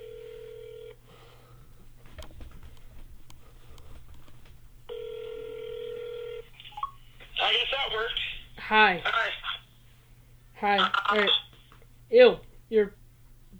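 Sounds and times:
electronic phone keypad tones: 0.0s - 1.0s, 4.9s - 7.0s
constant low hum: 0.0s - 13.5s
soft clicks and taps: 1.8s - 4.9s
speech: 7.5s - 9.4s, 10.6s - 11.4s, 12.1s - 13.0s.

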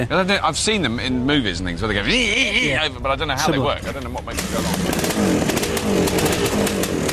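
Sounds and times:
speech: 0.0s - 6.9s
snowmobile engine droning: 4.3s - 7.1s.

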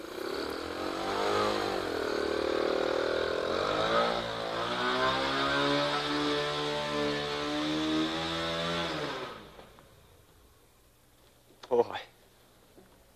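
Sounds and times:
motorcycle engine revving and idling: 0.0s - 9.8s.

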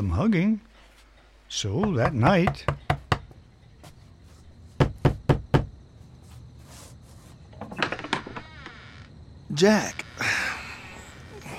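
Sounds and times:
speech: 0.1s - 0.7s, 1.5s - 2.8s, 9.6s - 10.3s
faint shuffling: 0.6s - 1.5s, 3.3s - 4.8s, 5.9s - 7.7s
firm knocking on a door: 1.8s - 3.4s, 4.8s - 5.8s.

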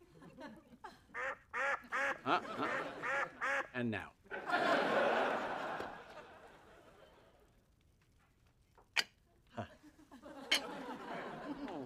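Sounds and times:
duck quacking: 1.2s - 3.7s
laughter: 2.1s - 3.4s, 4.3s - 7.3s, 9.6s - 11.8s
speech: 3.8s - 4.6s.

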